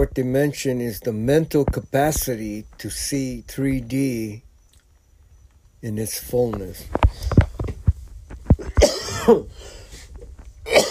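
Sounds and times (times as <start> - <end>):
speech: 0.0 - 4.4, 5.8 - 7.4, 9.3 - 9.8
person coughing: 8.6 - 9.6, 10.7 - 10.8.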